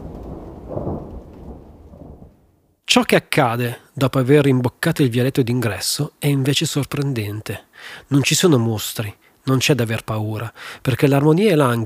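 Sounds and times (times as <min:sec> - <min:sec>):
low rumble of thunder: 0:00.0 - 0:02.6
steady rain: 0:00.0 - 0:02.6
speech: 0:03.0 - 0:11.8.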